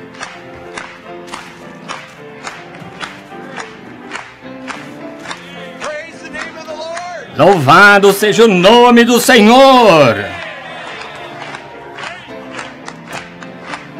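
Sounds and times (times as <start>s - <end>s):
audience clapping in unison during a Christian worship song: 0.0s - 8.5s, 9.5s - 13.9s
crowd voices singing a Christian worship song and calling out: 3.2s - 8.6s, 9.9s - 13.2s
speech: 7.4s - 10.4s.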